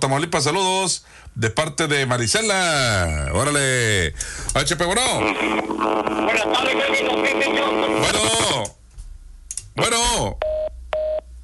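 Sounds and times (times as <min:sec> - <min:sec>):
speech: 0:00.0 - 0:08.8, 0:09.8 - 0:10.5
busy radio-style sound with sweeping tones: 0:02.5 - 0:04.1, 0:04.7 - 0:08.6.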